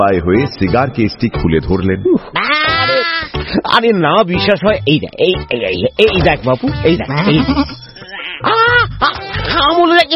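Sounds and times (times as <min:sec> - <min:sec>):
speech: 0:00.0 - 0:02.5, 0:03.6 - 0:07.8, 0:09.6 - 0:10.1
goat bleating: 0:02.4 - 0:03.3, 0:07.0 - 0:08.8.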